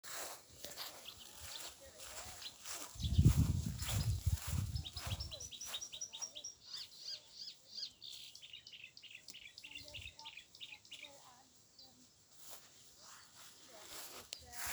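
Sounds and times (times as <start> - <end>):
marsh warbler singing high chattering and twittering notes: 2.3 - 11.2.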